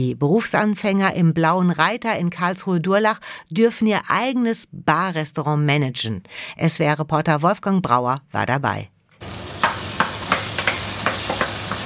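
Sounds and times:
speech: 0:00.0 - 0:09.4
chicken meat sizzling in a hot pan: 0:09.2 - 0:11.8.

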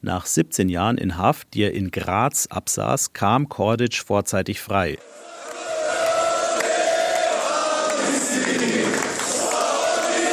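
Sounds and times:
speech: 0:00.0 - 0:05.3
crowd of supporters cheering and shouting in an airport terminal: 0:05.0 - 0:10.3.

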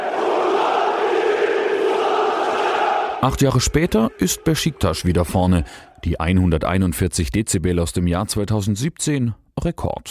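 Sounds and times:
football crowd chanting in a Turkish stadium with a metal roof: 0:00.0 - 0:06.0
speech: 0:03.2 - 0:10.0.

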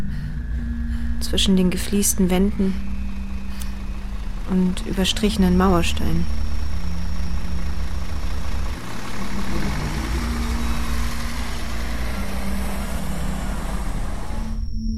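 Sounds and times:
large vehicle engine idling: 0:00.0 - 0:14.6
faint high whine: 0:00.0 - 0:14.9
speech: 0:01.2 - 0:02.9, 0:04.5 - 0:06.4.

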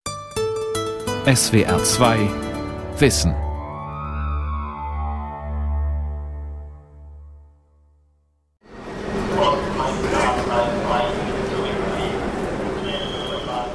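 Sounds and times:
speech: 0:01.2 - 0:03.4
sustained electronic tone: 0:03.4 - 0:07.2
dense murmuring crowd chatter on a crowded train station platform: 0:08.9 - 0:13.7.

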